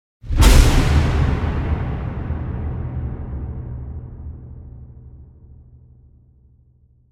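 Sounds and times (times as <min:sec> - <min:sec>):
big shocking metallic impact strike with strong reverb: 0:00.3 - 0:06.2.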